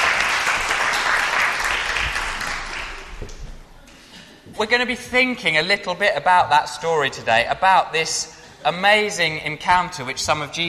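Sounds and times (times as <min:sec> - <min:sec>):
audience clapping for actors after a Bible-story performance: 0:00.0 - 0:03.5
speech: 0:04.6 - 0:10.6.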